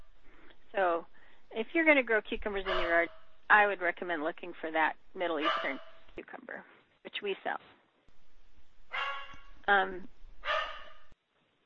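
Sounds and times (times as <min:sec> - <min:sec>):
speech: 0:00.7 - 0:07.8, 0:09.7 - 0:10.2
male dog barking: 0:02.7 - 0:03.1, 0:05.4 - 0:06.0, 0:08.9 - 0:09.5, 0:10.4 - 0:11.1.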